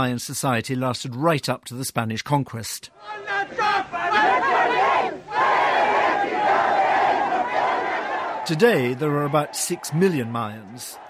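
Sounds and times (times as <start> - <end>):
speech: 0.0 - 4.9, 8.5 - 11.0
crowd shouting during the 1994 Zapatista Maya uprising against the Mexican state: 3.0 - 11.0.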